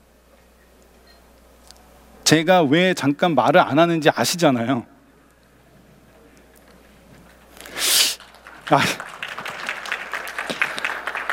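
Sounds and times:
speech: 0:02.3 - 0:04.9, 0:08.7 - 0:09.0
audience applause: 0:07.2 - 0:11.3.

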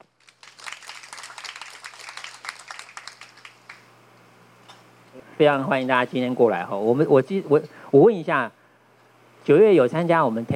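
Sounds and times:
audience applause welcoming a speaker: 0:00.0 - 0:03.9
faint electrical hum: 0:00.0 - 0:10.5
speech: 0:05.4 - 0:08.6, 0:09.5 - 0:10.5.

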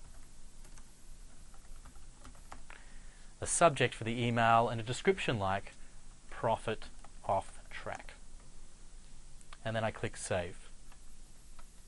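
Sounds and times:
typing on a computer keyboard: 0:00.0 - 0:02.7
steady hiss: 0:00.0 - 0:11.8
speech: 0:03.4 - 0:05.8, 0:06.4 - 0:08.2, 0:09.6 - 0:10.6.

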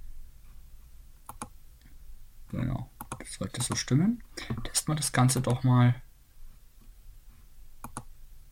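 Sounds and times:
faint low hum: 0:00.0 - 0:08.5
computer mouse clicking on an on-screen button: 0:01.2 - 0:01.5, 0:03.0 - 0:03.8, 0:05.3 - 0:05.6, 0:07.8 - 0:08.1
speech: 0:02.5 - 0:06.0.

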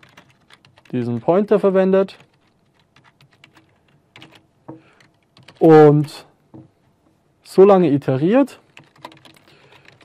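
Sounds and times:
computer keyboard typing as code is entered: 0:00.0 - 0:06.2, 0:08.7 - 0:10.0
speech: 0:00.9 - 0:02.3, 0:05.6 - 0:06.3, 0:07.6 - 0:08.6.

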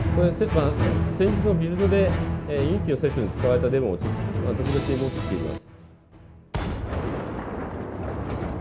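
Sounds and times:
speech: 0:00.2 - 0:05.7
tank cannon firing in a video game demo: 0:06.5 - 0:08.6.

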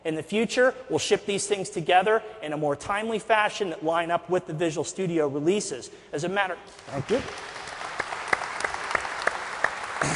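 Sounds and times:
speech: 0:00.1 - 0:07.5
audience applause at a software presentation: 0:06.7 - 0:10.1.

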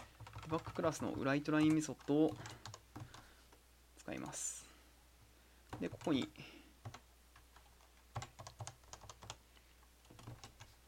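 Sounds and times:
typing programming code on a computer keyboard: 0:00.0 - 0:03.3, 0:05.7 - 0:09.4, 0:10.0 - 0:10.8
speech: 0:00.5 - 0:02.7, 0:04.0 - 0:04.6, 0:05.8 - 0:06.6.

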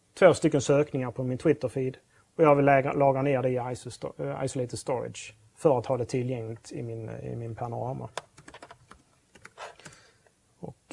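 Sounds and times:
speech: 0:00.2 - 0:08.3
typing on a computer keyboard while writing code: 0:08.2 - 0:10.0.

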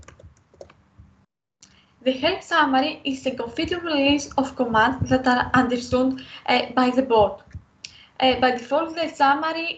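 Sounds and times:
rapid typing on a computer keyboard: 0:00.0 - 0:00.8
speech: 0:02.0 - 0:07.5, 0:08.2 - 0:09.7.

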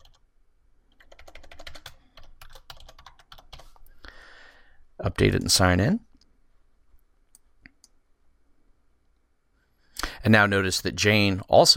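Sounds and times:
password being typed on a computer keyboard: 0:00.0 - 0:00.2, 0:00.9 - 0:03.9
speech: 0:05.0 - 0:06.1, 0:10.2 - 0:11.7.

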